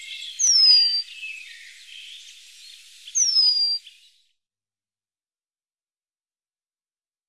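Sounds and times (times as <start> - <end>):
Eurasian penduline tit thin high falling whistled calls: 0.0 - 4.2.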